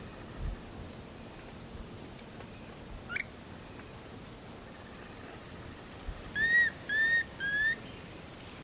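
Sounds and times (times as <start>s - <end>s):
background hiss: 0.0s - 8.6s
Planalto tyrannulet subspecies cearae whistling: 6.4s - 8.0s.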